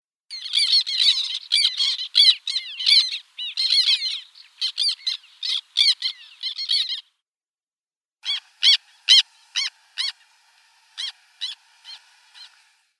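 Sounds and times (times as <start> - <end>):
Chlidonias niger calls: 0.3 - 7.1, 8.2 - 12.9.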